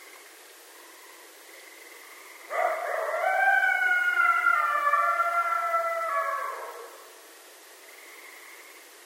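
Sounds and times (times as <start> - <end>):
coyote howling: 2.5 - 7.2.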